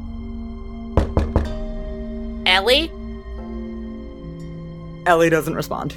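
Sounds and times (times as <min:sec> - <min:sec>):
quick firm knocking on a door: 0:01.0 - 0:01.7
speech: 0:02.6 - 0:03.0, 0:05.0 - 0:05.9.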